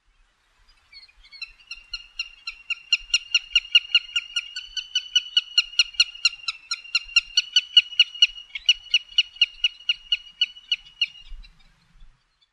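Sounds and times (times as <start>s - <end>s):
willet calling: 0.7s - 12.5s.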